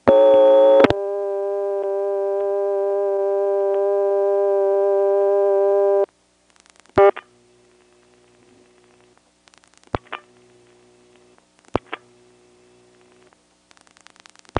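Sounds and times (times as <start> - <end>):
telephone line click: 0.0 - 1.1, 1.8 - 2.7, 3.6 - 3.9
buzzy telephone busy tone from an old Stromberg XY exchange: 0.0 - 6.1.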